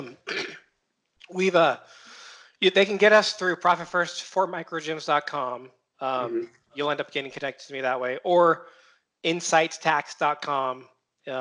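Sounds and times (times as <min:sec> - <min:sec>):
person clearing throat while holding back a cough: 0:00.0 - 0:00.6
speech: 0:01.3 - 0:02.0, 0:02.6 - 0:11.3.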